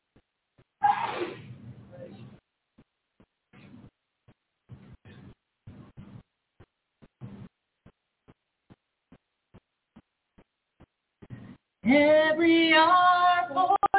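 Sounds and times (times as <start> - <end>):
loud sneeze during a church service: 0.8 - 1.5
soft low thumps: 1.5 - 11.9
speech: 11.9 - 13.8.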